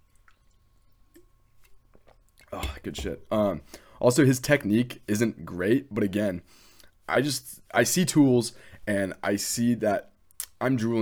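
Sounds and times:
person sipping and swallowing water: 0.0s - 3.9s
speech: 2.5s - 11.0s.

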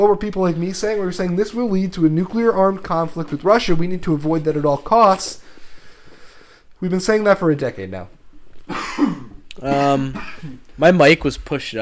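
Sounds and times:
speech: 0.0s - 5.4s, 6.8s - 11.8s
deep rough throaty cough: 8.7s - 10.7s.

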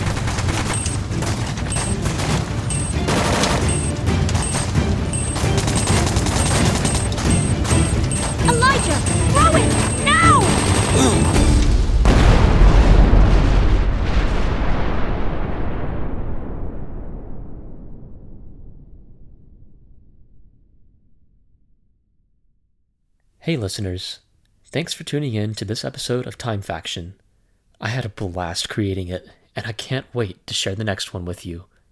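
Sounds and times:
battle noise: 0.0s - 12.3s
steady dense gunfire: 0.0s - 13.8s
grenade explosion during a firefight: 0.0s - 19.5s
speech: 23.5s - 27.2s, 27.8s - 31.7s.

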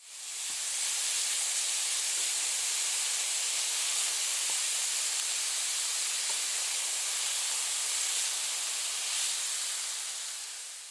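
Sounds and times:
triangular samosas frying: 0.0s - 10.8s.

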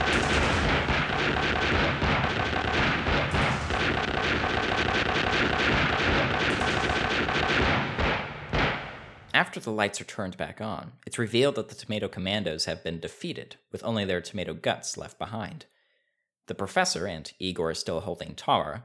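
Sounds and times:
gunfire in a film shootout: 0.0s - 9.4s
speech: 9.5s - 15.7s, 16.5s - 18.8s.

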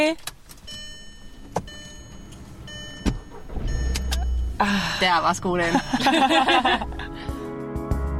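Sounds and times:
speech: 0.0s - 0.3s, 4.6s - 7.0s
car engine turning over and rumbling as the car sets off: 0.0s - 8.1s
laughter: 5.7s - 7.3s.

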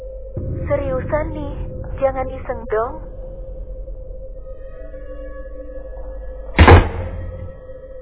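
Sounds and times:
speech: 0.7s - 3.1s
door slamming shut with a heavy booming thud: 6.6s - 7.6s.

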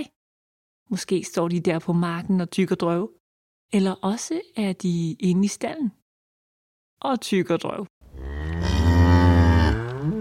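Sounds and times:
speech: 0.9s - 6.0s, 7.0s - 7.9s
cow mooing: 8.1s - 10.2s.

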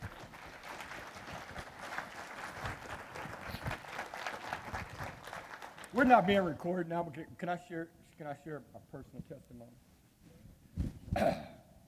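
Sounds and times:
roomful of people applauding: 0.0s - 6.5s
speech: 6.0s - 9.9s, 11.2s - 11.4s.

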